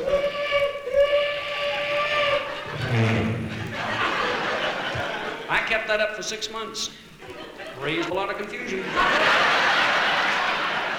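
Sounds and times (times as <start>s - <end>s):
voice imitating a train whistle: 0.0s - 2.6s
laughter: 1.4s - 5.8s, 7.2s - 10.9s
speech: 5.7s - 7.1s, 7.8s - 9.6s.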